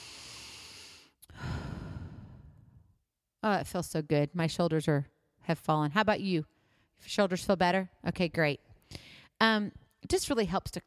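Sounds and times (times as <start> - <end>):
deep breathing in a relaxation exercise: 0.0 - 2.9
speech: 3.4 - 10.8.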